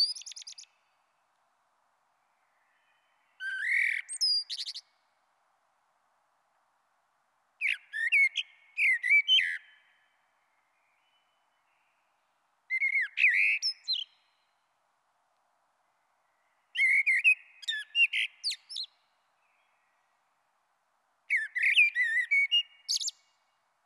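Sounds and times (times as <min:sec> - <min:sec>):
common blackbird singing mellow whistled phrases: 0:00.0 - 0:00.8, 0:02.4 - 0:04.9, 0:07.6 - 0:10.0, 0:12.7 - 0:14.4, 0:16.7 - 0:20.0, 0:21.3 - 0:23.4.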